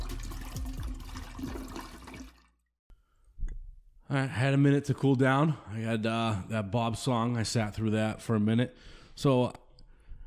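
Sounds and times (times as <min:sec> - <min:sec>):
toilet flushing: 0:00.0 - 0:02.7
speech: 0:04.1 - 0:09.6.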